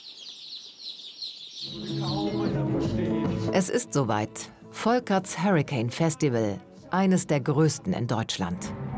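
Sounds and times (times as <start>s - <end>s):
healthy lively chicks peeping: 0.0s - 2.6s
speech: 1.6s - 8.8s.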